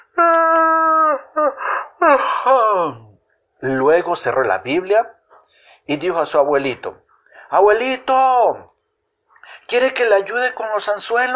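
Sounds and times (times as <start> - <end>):
person imitating the yawn of someone reading the Bible: 0.0 - 3.1
speech: 2.0 - 5.2, 5.8 - 8.7, 9.5 - 11.3.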